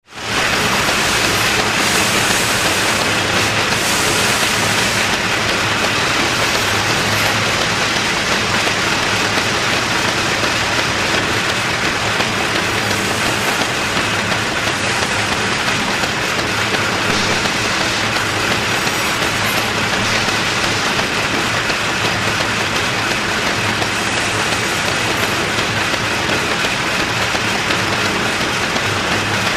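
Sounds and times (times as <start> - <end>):
factory background noise: 0.0 - 29.5.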